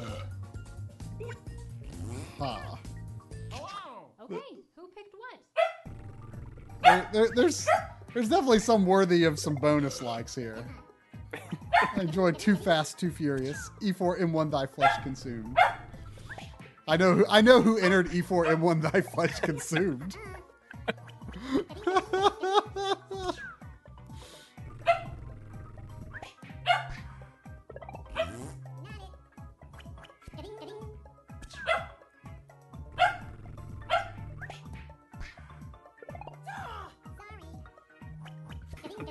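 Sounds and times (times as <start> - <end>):
speech: 2.4 - 2.9, 4.3 - 5.5, 6.8 - 15.7, 16.9 - 22.2
dog barking excitedly: 5.6 - 5.8, 6.8 - 8.0, 11.7 - 12.0, 15.6 - 15.8, 24.8 - 25.1, 26.7 - 27.0, 31.6 - 32.0, 33.0 - 33.3, 33.9 - 34.2
laughter: 11.3 - 13.5, 17.0 - 23.4.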